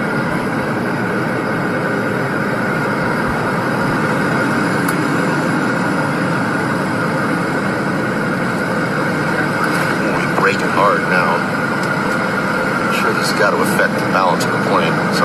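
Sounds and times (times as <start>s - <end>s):
airplane rolling down the runway after touching down: 0.0s - 15.2s.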